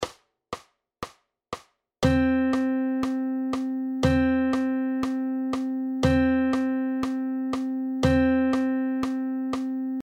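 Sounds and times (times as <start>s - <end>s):
whole notes: 2.0s - 10.0s.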